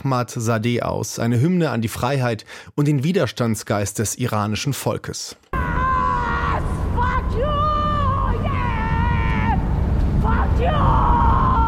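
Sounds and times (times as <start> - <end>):
speech: 0.0 - 5.5
woman screaming and wailing from a moving car at night: 5.6 - 9.6, 10.2 - 11.6
low rumble of a moving vehicle: 5.6 - 11.6.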